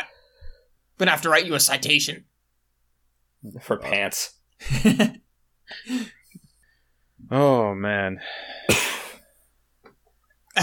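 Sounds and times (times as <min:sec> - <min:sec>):
speech: 0:01.0 - 0:02.3, 0:03.4 - 0:06.2, 0:07.3 - 0:08.6
half-suppressed cough: 0:08.7 - 0:09.2.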